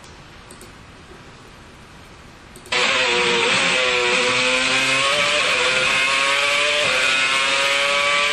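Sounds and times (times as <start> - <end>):
racing car engine heard on board: 2.7 - 8.3.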